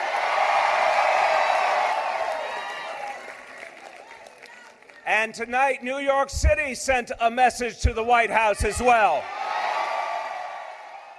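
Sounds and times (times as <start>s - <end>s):
large crowd cheering and shouting at an election night rally: 0.0s - 5.1s, 8.4s - 11.1s
speech: 5.2s - 9.4s.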